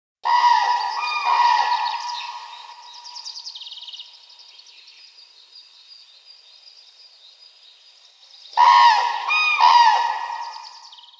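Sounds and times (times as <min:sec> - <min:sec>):
common crane calling: 0:00.2 - 0:03.2, 0:08.6 - 0:10.9.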